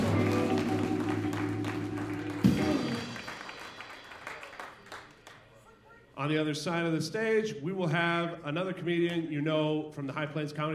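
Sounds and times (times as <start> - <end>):
audience applause and cheering for a comedian at a live comedy panel show: 0.0 - 5.5
speech: 6.2 - 10.7.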